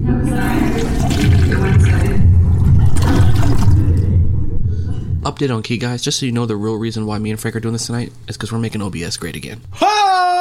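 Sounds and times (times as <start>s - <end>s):
toilet flushing: 0.2s - 4.1s
speech: 5.3s - 10.3s.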